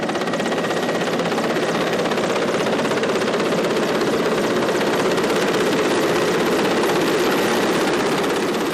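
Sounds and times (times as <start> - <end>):
helicopter rotor chopping: 0.0 - 8.7.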